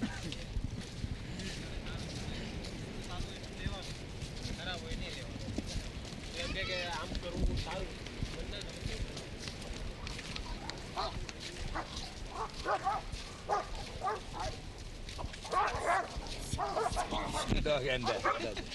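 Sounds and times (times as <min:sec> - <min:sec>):
voices and commotion: 0:00.1 - 0:18.7
dogs including a bulldog barking, yelping and snarling while fighting: 0:10.3 - 0:17.5, 0:18.0 - 0:18.6.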